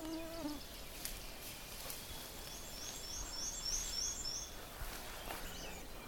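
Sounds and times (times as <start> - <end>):
black-and-white warbler singing at a bog by the water's edge: 0.0 - 6.0.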